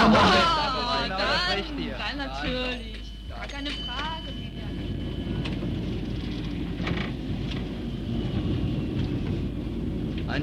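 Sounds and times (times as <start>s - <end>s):
indistinct voices murmuring: 0.0s - 5.0s
faint high whine: 0.0s - 10.4s
tram rolling in to a stop: 0.0s - 10.4s
speech: 1.4s - 4.4s.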